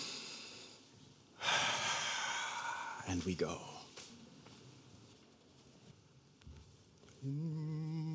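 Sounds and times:
group of people in an Easter Sunday worship service breathing in together: 0.0 - 3.0
speech: 3.1 - 3.8, 7.2 - 8.0.

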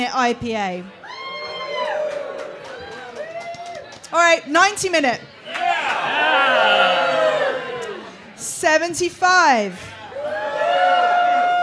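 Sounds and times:
speech: 0.0 - 1.0, 4.1 - 5.4, 8.6 - 9.9
audience cheering and shouting to vote for beer: 1.0 - 3.9, 5.4 - 8.3, 10.0 - 11.6.

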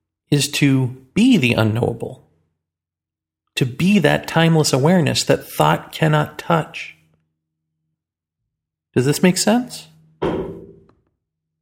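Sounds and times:
speech: 0.3 - 2.2, 3.6 - 7.0, 9.0 - 10.4
bird hitting a sliding glass door with a dull thud: 10.2 - 11.0.

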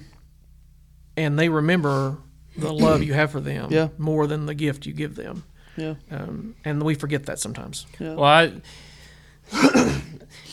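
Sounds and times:
speech: 1.2 - 8.9, 9.5 - 10.5
cough and throat clearing: 2.8 - 3.1, 9.5 - 10.5.

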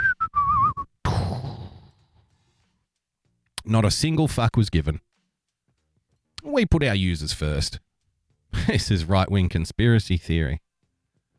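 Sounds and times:
person whistling a tune: 0.0 - 0.9
speech: 3.7 - 5.1, 6.5 - 7.9, 8.6 - 10.6.

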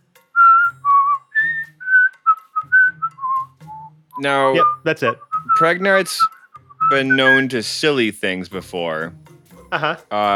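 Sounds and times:
person whistling a short bouncy tune: 0.4 - 7.6
speech: 4.2 - 10.3.

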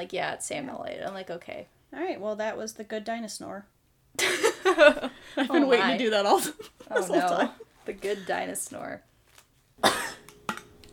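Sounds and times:
speech: 0.0 - 9.1
laughter: 4.2 - 7.7
person coughing from a tickle in the throat: 9.8 - 10.3.

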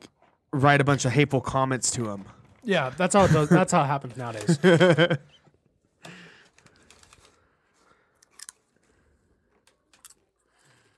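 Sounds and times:
speech: 0.5 - 5.4
laughter: 2.8 - 5.4
people crunching and chewing popcorn: 6.0 - 10.9.

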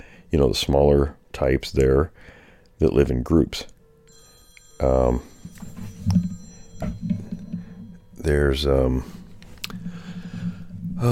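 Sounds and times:
speech: 0.0 - 3.8, 4.8 - 5.3, 6.0 - 7.2, 8.2 - 9.2
phone ringing with electronic tone: 3.8 - 11.1.

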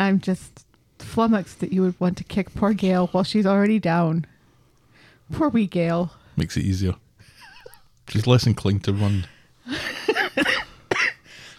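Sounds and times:
speech: 0.0 - 4.3, 5.3 - 7.0, 8.1 - 9.4
wet chesty coughs: 10.1 - 11.2.

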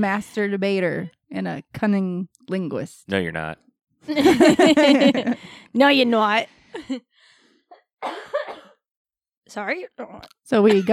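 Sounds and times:
speech: 0.0 - 7.1, 8.0 - 8.6, 9.5 - 10.9
laughter: 4.1 - 5.4
loud raspy cough: 8.0 - 8.8, 10.7 - 10.9.

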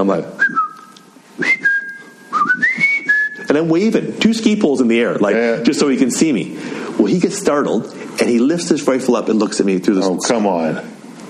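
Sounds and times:
speech: 0.0 - 0.5, 3.5 - 11.0
person whistling to get a man's attention: 0.4 - 3.5.

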